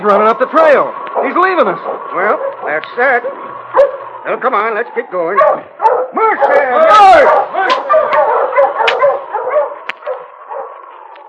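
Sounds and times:
speech: 0.0s - 8.2s
dog barking: 1.2s - 4.1s, 5.3s - 10.8s.

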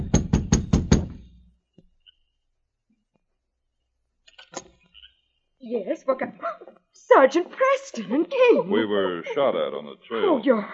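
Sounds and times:
firm knocks on a wooden cabin door: 0.0s - 1.2s
speech: 5.7s - 10.7s
laughter: 7.6s - 10.7s.

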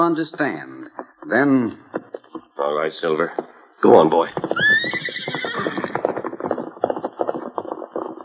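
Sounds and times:
speech: 0.0s - 1.8s, 2.6s - 4.8s
horse hoofbeats galloping down a hill: 0.0s - 8.2s
horse whinnying: 4.4s - 6.3s.

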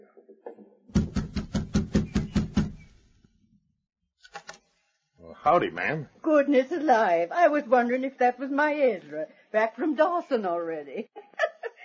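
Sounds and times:
firm knocking on a wooden door: 1.0s - 2.9s
speech: 5.4s - 11.2s.

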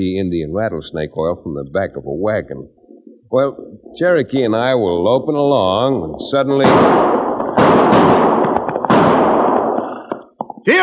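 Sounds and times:
speech: 0.0s - 8.2s, 10.6s - 10.8s
loud sharp gunshots with long rumbling echo: 6.6s - 10.0s
faint cracks: 7.1s - 10.7s.

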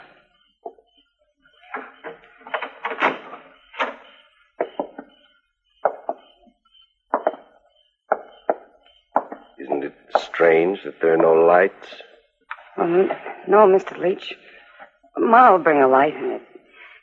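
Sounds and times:
door being worked open with rattling clunks and scrapes: 1.6s - 5.1s
sharp paired knocks and thumps: 1.6s - 5.2s, 5.8s - 6.5s, 7.1s - 11.4s
speech: 10.4s - 12.1s, 12.8s - 14.5s, 15.2s - 16.5s.

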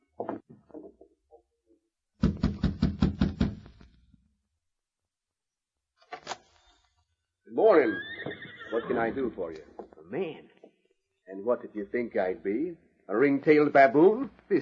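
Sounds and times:
firm knocking on a door: 2.2s - 3.7s
speech: 7.7s - 8.1s, 8.8s - 10.5s, 11.3s - 14.6s.

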